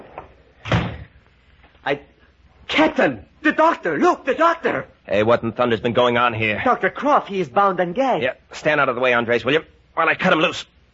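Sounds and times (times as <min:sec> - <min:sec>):
cottage door being shut: 0:00.1 - 0:01.1
speech: 0:01.8 - 0:02.1, 0:02.7 - 0:10.7.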